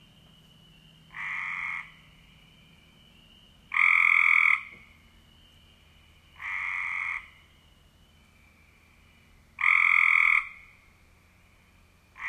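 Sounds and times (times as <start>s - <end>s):
thin continuous high tone: 0.0s - 12.2s
Cope's gray treefrog trilling: 1.1s - 2.1s, 3.7s - 4.8s, 6.4s - 7.5s, 9.6s - 10.8s.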